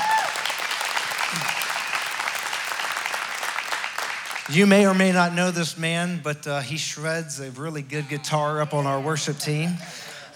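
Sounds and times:
audience applauding: 0:00.0 - 0:05.1
speech: 0:04.5 - 0:10.3.

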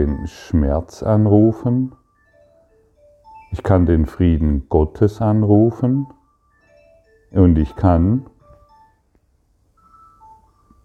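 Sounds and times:
speech: 0:00.0 - 0:02.0, 0:03.5 - 0:06.2, 0:07.3 - 0:08.3
telephone ringing with short electronic melodic tones: 0:00.0 - 0:10.8.

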